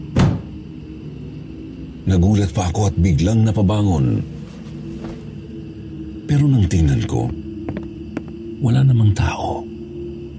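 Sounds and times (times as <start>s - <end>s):
door slamming shut: 0.2s - 0.5s
speech: 2.0s - 4.4s, 6.3s - 7.4s, 8.6s - 9.7s.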